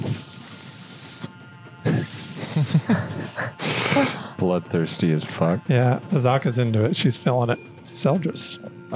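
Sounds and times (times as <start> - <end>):
voice imitating insect hissing: 0.0 - 2.9
speech: 2.6 - 8.9.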